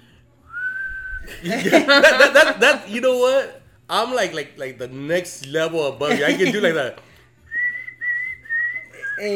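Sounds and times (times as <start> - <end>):
person attempting to whistle one steady mid-pitched note: 0.5 - 1.4, 7.5 - 9.3
laughter: 1.3 - 2.8, 6.1 - 6.9
speech: 1.3 - 7.1, 9.2 - 9.3.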